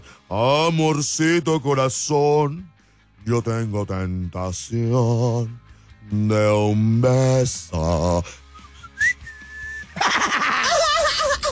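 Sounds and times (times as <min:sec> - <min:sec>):
speech: 0:00.3 - 0:08.4
person whistling a tune: 0:08.2 - 0:10.0
laughter: 0:09.8 - 0:11.5.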